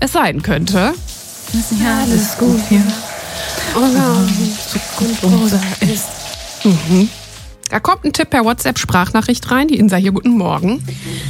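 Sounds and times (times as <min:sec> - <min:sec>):
speech: 0:00.1 - 0:11.2
running shower water: 0:00.4 - 0:07.6.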